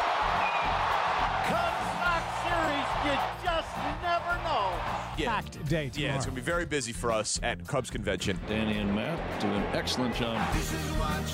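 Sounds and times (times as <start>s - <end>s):
packed stadium crowd cheering after home run: 0.0s - 5.5s, 8.3s - 11.3s
speech: 5.2s - 11.3s.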